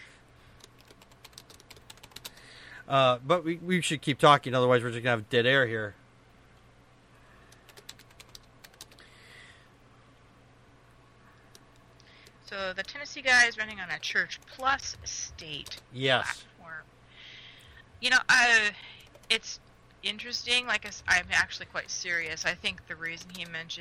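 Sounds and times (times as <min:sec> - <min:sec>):
typing on a computer keyboard: 0:00.6 - 0:02.4, 0:07.5 - 0:09.0, 0:13.7 - 0:15.0, 0:19.0 - 0:19.4, 0:20.8 - 0:23.7
speech: 0:02.9 - 0:06.0, 0:13.2 - 0:16.5, 0:18.0 - 0:23.8.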